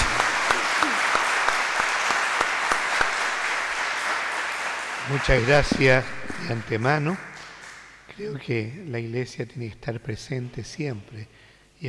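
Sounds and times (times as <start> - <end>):
audience applauding: 0.0 - 8.1
speech: 5.1 - 7.3, 8.2 - 11.8.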